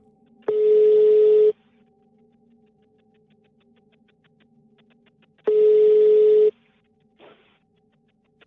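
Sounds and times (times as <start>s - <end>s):
outgoing phone call ringback tones: 0.5s - 1.6s, 5.5s - 6.5s.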